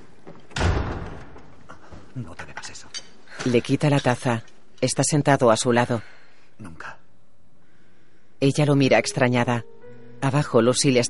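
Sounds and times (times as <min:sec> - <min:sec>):
door pushed shut with a dull thump: 0:00.5 - 0:01.5
speech: 0:02.2 - 0:02.4, 0:03.4 - 0:06.9, 0:08.4 - 0:11.0.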